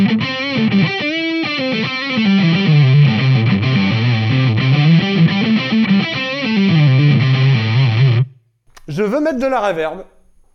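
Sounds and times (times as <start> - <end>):
distorted electric guitar through an amp on the neck pickup: 0.0 - 8.4
speech: 9.1 - 10.2.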